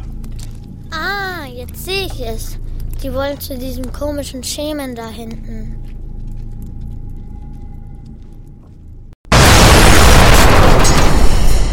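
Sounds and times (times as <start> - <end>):
speech: 1.6 - 5.9
loud explosion as an artillery gun is hit: 9.3 - 11.7
roaring crackling blast with debris noise: 9.3 - 11.7.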